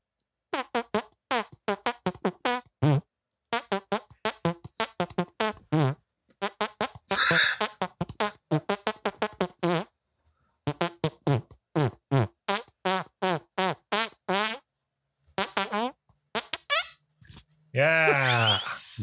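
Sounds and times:
wet hand farts playing a bouncy tune: 0.6s - 9.9s, 10.7s - 14.6s, 15.4s - 17.4s, 18.2s - 18.9s.

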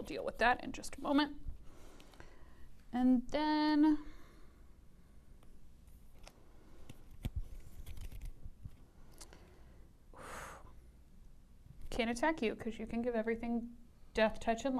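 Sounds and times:
speech: 0.0s - 1.5s, 2.9s - 4.2s, 12.0s - 14.7s
playing cards shuffled during a trading card game: 5.8s - 8.8s.

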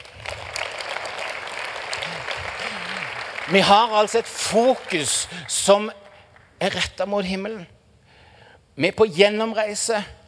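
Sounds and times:
audience applause: 0.0s - 5.8s
speech: 3.5s - 6.0s, 6.6s - 7.8s, 8.8s - 10.2s.

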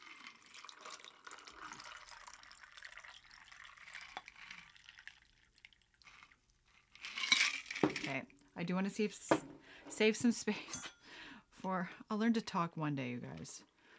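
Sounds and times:
liquid pouring over ice cubes into a glass: 0.0s - 7.9s
speech: 8.1s - 10.8s, 11.6s - 13.7s.

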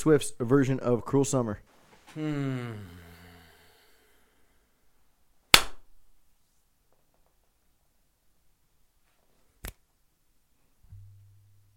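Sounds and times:
speech: 0.0s - 3.0s
brief falling tonal vocal sound: 2.1s - 4.7s
crisp finger snap: 5.5s - 5.9s
sharp slap: 5.5s - 5.9s.

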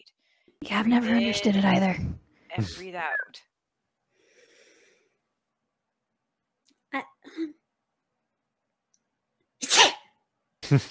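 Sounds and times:
speech: 0.6s - 3.5s, 6.9s - 7.6s, 10.7s - 10.8s
person sneezing: 9.6s - 10.1s.

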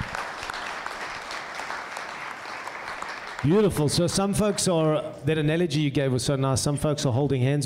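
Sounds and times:
large indoor crowd applauding: 0.0s - 4.7s
speech: 3.4s - 7.6s.

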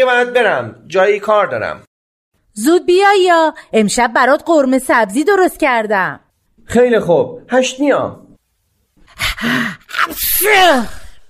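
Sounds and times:
speech: 0.0s - 1.9s, 2.6s - 8.2s, 9.2s - 11.0s
loud sneeze: 9.9s - 11.2s.

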